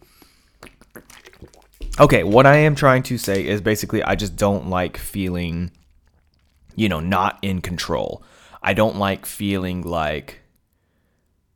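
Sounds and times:
person sipping water: 0:00.0 - 0:07.1
speech: 0:02.0 - 0:05.8, 0:06.8 - 0:10.4
sharp breath: 0:08.2 - 0:08.6.

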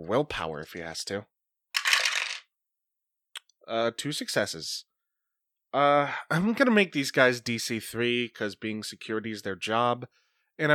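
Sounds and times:
speech: 0:00.0 - 0:01.4, 0:03.7 - 0:04.9, 0:05.7 - 0:10.7
four dice tumbling across a tabletop during a strength brawl check: 0:01.8 - 0:02.5.

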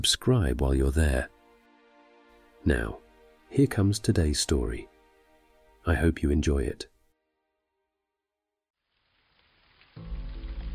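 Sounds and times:
speech: 0:00.0 - 0:01.4, 0:02.6 - 0:04.9, 0:05.8 - 0:06.9
heavy rain: 0:08.8 - 0:10.7.

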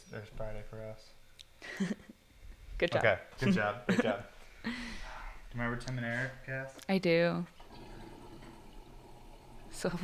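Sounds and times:
speech: 0:00.1 - 0:02.1, 0:02.8 - 0:07.6, 0:09.7 - 0:10.0
toilet flushing with water draining: 0:07.6 - 0:10.0.

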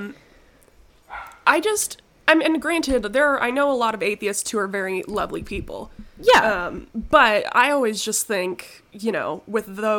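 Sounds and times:
dog bark: 0:01.1 - 0:01.4
speech: 0:01.5 - 0:09.9.

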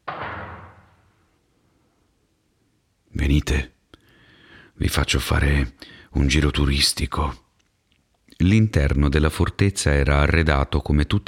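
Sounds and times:
heavy iron gate slamming shut on concrete: 0:00.0 - 0:01.2
speech: 0:03.3 - 0:03.8, 0:04.8 - 0:07.4, 0:08.4 - 0:11.2.

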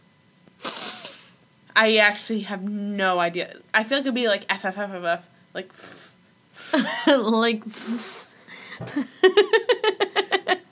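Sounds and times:
sharp sniff through the nose: 0:00.6 - 0:01.4, 0:05.8 - 0:06.8, 0:07.7 - 0:08.7
speech: 0:01.8 - 0:08.2, 0:08.8 - 0:09.8.

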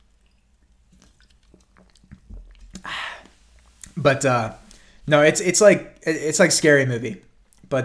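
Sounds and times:
person sipping a drink: 0:00.0 - 0:04.0
soft wet lip and mouth clicks: 0:00.0 - 0:04.0, 0:07.4 - 0:07.7
low gulp: 0:00.9 - 0:04.0
short breathy exhale: 0:02.8 - 0:03.4
speech: 0:04.0 - 0:07.8.

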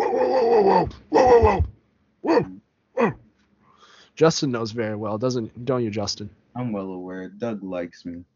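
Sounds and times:
golden retriever lab mix dog growling bark: 0:00.0 - 0:03.2
speech: 0:00.3 - 0:03.2, 0:04.2 - 0:08.3.

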